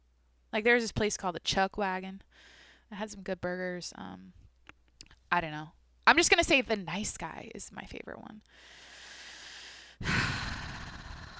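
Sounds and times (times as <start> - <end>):
speech: 0.5 - 4.4, 5.3 - 8.8
heavy breathy exhale: 8.6 - 11.3.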